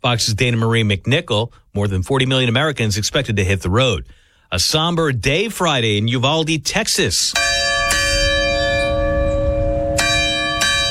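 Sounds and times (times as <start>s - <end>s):
speech: 0.0s - 7.6s
church bell tolling: 7.3s - 10.8s.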